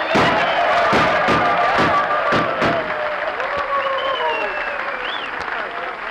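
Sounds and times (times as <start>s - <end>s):
sharp gunshots fired by the audience: 0.0s - 3.1s
crowd ovation of clapping, whoops and whistles: 0.0s - 6.0s.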